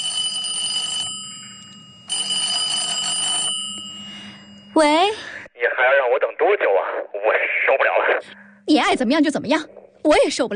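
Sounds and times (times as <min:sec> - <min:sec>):
telephone trilling ring in a living room: 0:00.0 - 0:05.0
speech: 0:04.8 - 0:10.5.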